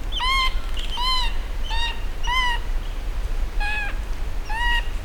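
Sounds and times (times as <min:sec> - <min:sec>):
Erythrotriorchis radiatus red goshawk calling: 0:00.1 - 0:02.7, 0:03.6 - 0:04.9.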